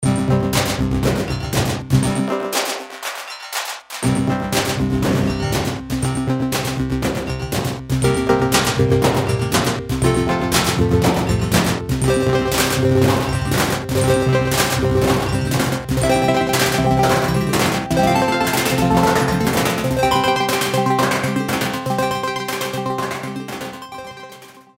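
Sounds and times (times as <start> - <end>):
trash beat: 0.1 - 23.9.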